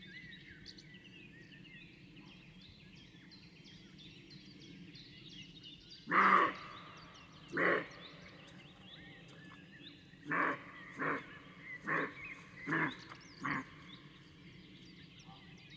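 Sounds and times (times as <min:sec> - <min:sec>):
birds chirping: 0:05.4 - 0:15.7
roe deer barking: 0:06.1 - 0:06.6, 0:07.5 - 0:07.9, 0:10.2 - 0:13.8.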